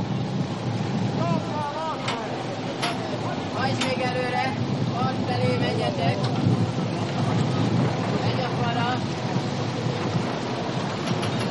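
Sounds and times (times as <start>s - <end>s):
wind rushing from a bridge over the Danube near the water: 0.0s - 11.4s.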